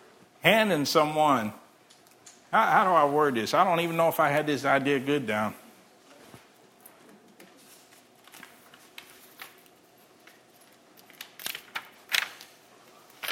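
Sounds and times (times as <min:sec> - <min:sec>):
speech: 0:00.4 - 0:01.6, 0:02.5 - 0:05.6
book pages turning: 0:07.5 - 0:09.8, 0:11.0 - 0:13.3.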